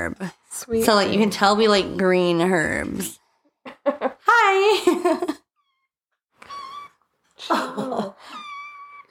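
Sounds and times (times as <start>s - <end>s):
speech: 0.0s - 3.2s, 3.9s - 5.3s, 7.4s - 8.4s
domestic cat meowing: 6.4s - 7.1s, 8.3s - 9.0s.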